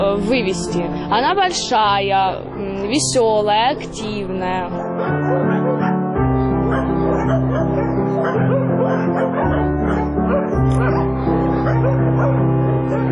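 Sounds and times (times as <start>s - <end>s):
speech: 0.0s - 5.5s
dogs barking at an animal shelter: 5.0s - 13.1s.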